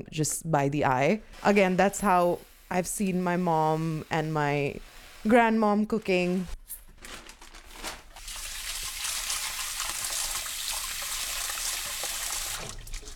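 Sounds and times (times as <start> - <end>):
speech: 0.0 - 7.2
tap water running over lentils being rinsed: 8.2 - 13.1.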